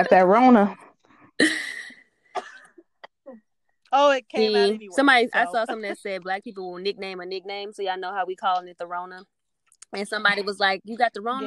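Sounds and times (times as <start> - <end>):
speech: 0.0 - 0.8, 1.4 - 1.6, 3.9 - 11.4
person under the weather coughing harshly: 1.4 - 2.8.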